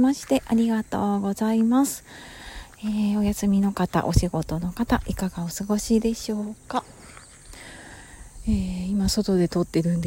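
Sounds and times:
light footsteps: 0.0 - 5.5
speech: 0.0 - 6.9, 8.4 - 10.0
insects chirping outdoors in the mountains: 0.0 - 10.0.

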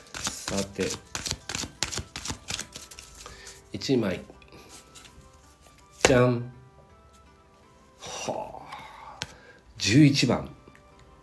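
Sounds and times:
oracle deck cards handled and drawn: 0.0 - 3.7, 4.6 - 6.2
speech: 0.5 - 1.1, 3.8 - 4.3, 6.1 - 6.6, 9.8 - 10.6.

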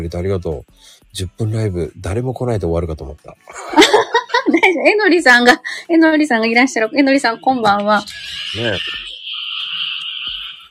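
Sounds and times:
speech: 0.0 - 9.0
chorus of frogs croaking and trilling outdoors: 7.5 - 10.7.

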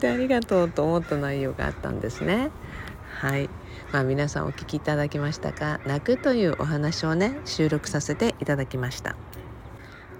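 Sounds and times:
crows cawing outdoors: 0.0 - 3.1, 3.7 - 7.0, 9.8 - 10.1
speech: 0.0 - 9.5.

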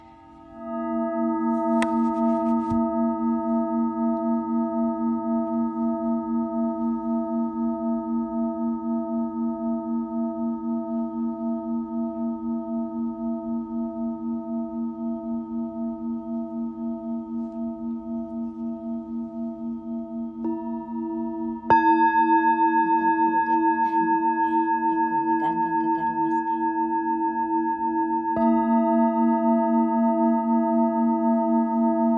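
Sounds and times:
singing bowl humming: 0.0 - 32.1
brief scraping sounds: 1.6 - 2.8.

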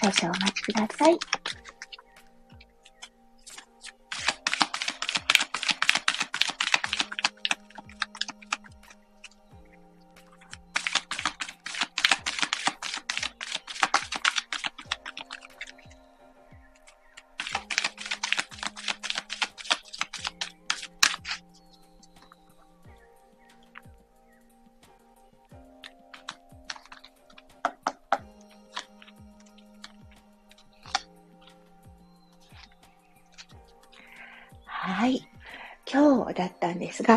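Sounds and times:
speech: 0.0 - 1.6, 37.0 - 37.1
spiritual message cards being drawn with rapid papery clicking: 0.0 - 9.5, 10.2 - 16.0, 16.7 - 21.4, 25.8 - 31.6
faint regular ticks: 0.0 - 35.8.

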